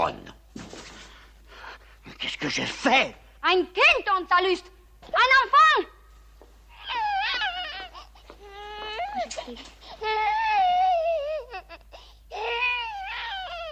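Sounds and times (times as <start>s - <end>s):
speech: 0.0s - 0.4s, 2.3s - 6.0s, 9.4s - 10.3s
baby crying loudly in high wavering wails: 6.7s - 13.7s.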